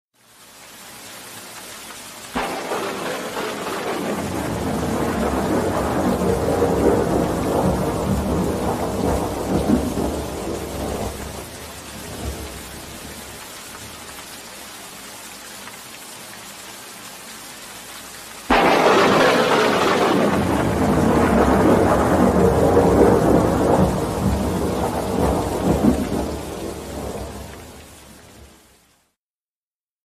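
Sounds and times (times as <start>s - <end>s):
rain: 0.2s - 29.2s
thunder: 2.4s - 13.4s, 18.5s - 28.0s.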